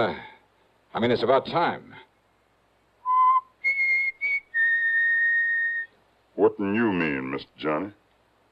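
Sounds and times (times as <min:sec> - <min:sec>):
speech: 0:00.0 - 0:00.3, 0:00.9 - 0:02.1, 0:06.4 - 0:08.0
person whistling a short tune: 0:03.1 - 0:05.9.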